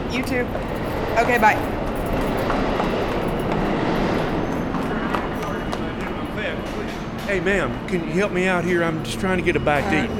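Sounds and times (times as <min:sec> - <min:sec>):
subway train passing in a station: 0:00.0 - 0:10.1
speech: 0:00.1 - 0:03.0, 0:07.3 - 0:10.1
voices: 0:04.1 - 0:10.1.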